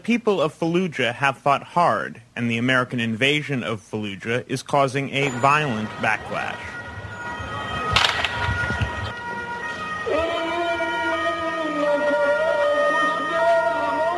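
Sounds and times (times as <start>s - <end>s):
speech: 0.0s - 6.8s
loud ambulance siren wailing: 5.2s - 14.1s
gunshot-like cracks: 7.9s - 9.1s.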